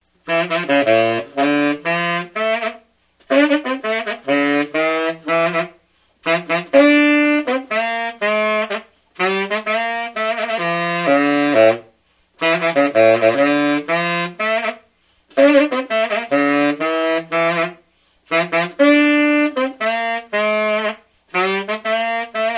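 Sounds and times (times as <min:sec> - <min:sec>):
tenor saxophone: 0:00.1 - 0:22.5.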